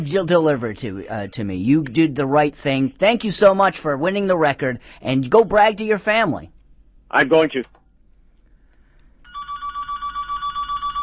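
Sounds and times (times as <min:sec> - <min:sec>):
speech: 0:00.0 - 0:06.5, 0:07.1 - 0:07.8
telephone ringing with electronic trill: 0:09.2 - 0:11.0.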